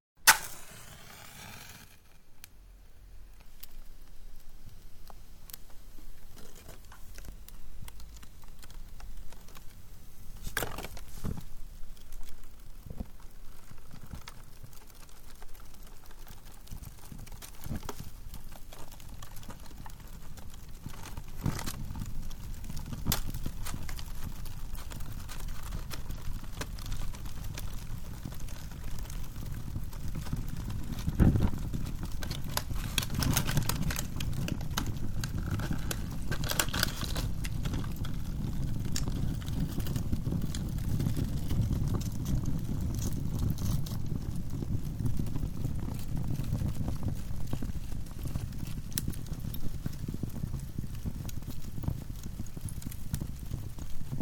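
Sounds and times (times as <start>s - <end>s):
match striking: 0.2s - 2.5s
open fire in a fireplace being lit: 0.2s - 2.6s, 3.3s - 54.2s.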